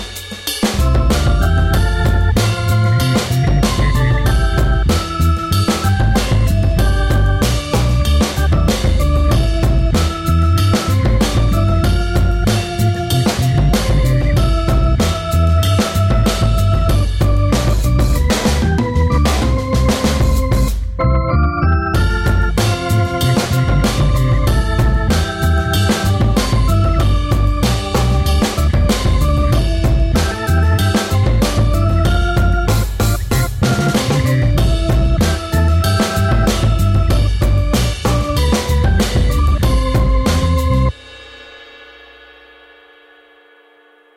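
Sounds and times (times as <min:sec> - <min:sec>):
gospel organ playing: 0:00.6 - 0:41.0.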